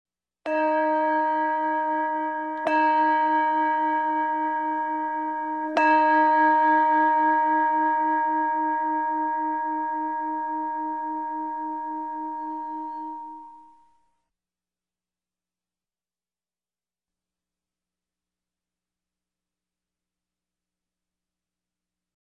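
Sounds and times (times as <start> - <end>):
bell strikes: 0.5 - 13.6.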